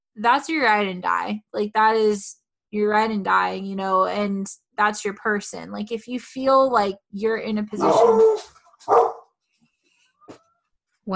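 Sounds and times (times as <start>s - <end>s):
speech: 0.2s - 9.1s
dog barking: 7.8s - 9.3s.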